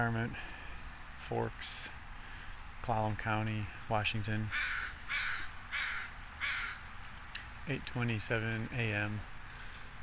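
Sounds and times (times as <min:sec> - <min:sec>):
speech: 0:00.0 - 0:00.6, 0:01.3 - 0:02.0, 0:02.8 - 0:04.9, 0:07.7 - 0:09.3
northwestern or American crows cawing atop spruce and hemlock trees: 0:04.5 - 0:06.9.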